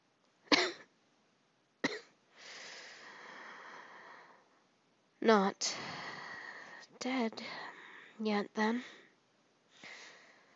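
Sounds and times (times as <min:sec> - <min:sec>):
weak husky coughs: 0:00.5 - 0:00.9
speech: 0:05.2 - 0:05.8, 0:07.0 - 0:09.0.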